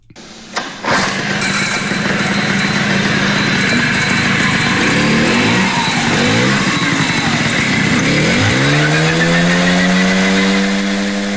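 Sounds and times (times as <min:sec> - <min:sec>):
1979 Jialing CJ50 motorcycle engine running: 0:00.0 - 0:11.3
laughter: 0:01.7 - 0:11.3.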